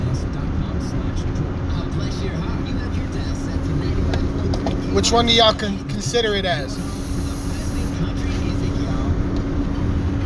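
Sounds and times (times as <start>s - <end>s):
low rumble of a moving vehicle's interior: 0.0s - 10.2s
speech: 5.0s - 6.9s
aerosol air freshener spray hissing: 6.8s - 8.0s.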